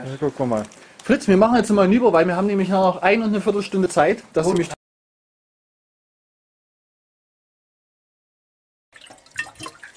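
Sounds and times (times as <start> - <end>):
speech: 0.0 - 4.8
water poured from a glass, swirling and splashing: 9.0 - 9.9.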